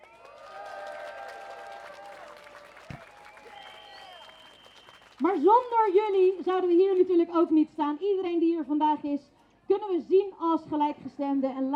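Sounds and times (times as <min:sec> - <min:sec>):
crowd applause at a street protest: 0:00.0 - 0:07.2
tonal whistles or shouts: 0:02.7 - 0:05.2
speech: 0:05.2 - 0:11.7.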